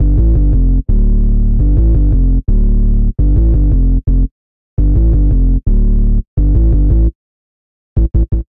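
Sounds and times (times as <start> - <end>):
bassline in D minor: 0.0 - 7.2, 8.0 - 8.4.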